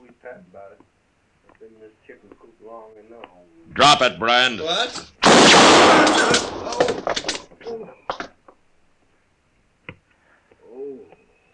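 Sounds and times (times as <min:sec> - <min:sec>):
speech: 0:00.2 - 0:01.0, 0:01.6 - 0:08.2
sharp clattering knocks: 0:05.0 - 0:08.3
gunshot striking a gun held in someone's hand: 0:05.2 - 0:07.4.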